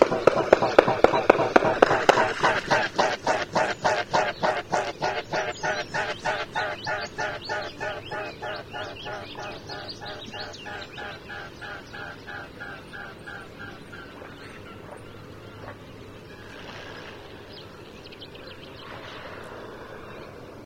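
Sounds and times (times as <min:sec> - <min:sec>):
mute swan Cygnus olor: 0:00.1 - 0:15.0.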